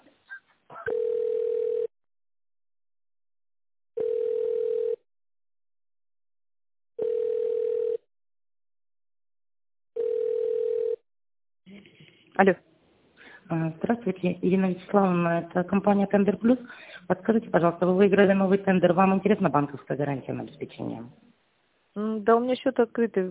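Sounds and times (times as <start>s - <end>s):
telephone ringback tone while an office call is transferred: 0.9s - 1.9s, 4.0s - 5.0s, 7.0s - 8.0s, 10.0s - 11.0s
speech: 12.4s - 12.7s, 13.5s - 21.3s, 22.0s - 23.2s.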